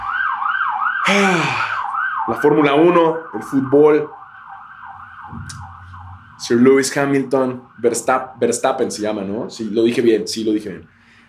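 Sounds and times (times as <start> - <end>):
ambulance siren wailing in rising-and-falling pattern: 0.0 - 10.4
speech: 1.1 - 1.7, 2.3 - 4.2, 6.5 - 11.0
low rumble of traffic: 2.3 - 11.2.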